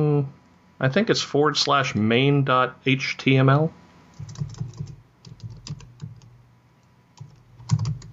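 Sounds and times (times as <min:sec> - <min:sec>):
speech: 0:00.0 - 0:04.7
typing on a computer keyboard: 0:04.2 - 0:06.4, 0:07.2 - 0:08.1.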